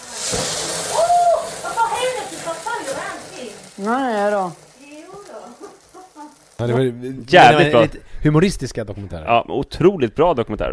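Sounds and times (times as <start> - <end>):
food sizzling in a hot pan: 0.0 - 8.1
speech: 3.8 - 4.6, 6.6 - 10.7.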